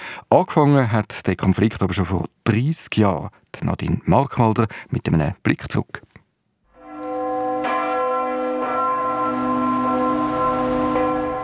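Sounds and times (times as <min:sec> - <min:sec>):
speech: 0:00.3 - 0:06.1
church bell ringing: 0:06.7 - 0:11.4.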